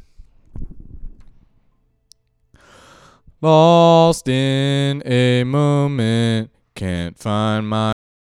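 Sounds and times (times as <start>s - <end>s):
male ambient lead vocal: 3.4s - 8.0s.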